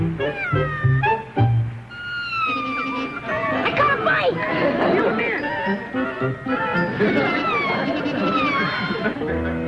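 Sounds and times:
cat caught in a trap meowing and yowling: 0.2 - 1.0, 2.0 - 4.1, 7.0 - 9.1
laughter: 3.1 - 9.6.

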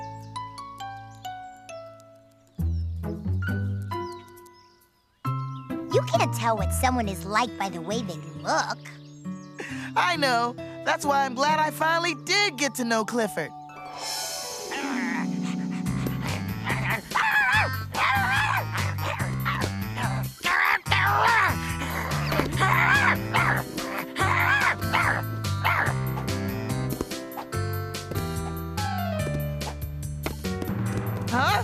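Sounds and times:
music: 0.0 - 31.6
speech: 6.0 - 9.0, 10.0 - 14.2
big dog whimpering and panting: 15.1 - 19.7
big dog barking and yipping: 15.8 - 26.0.

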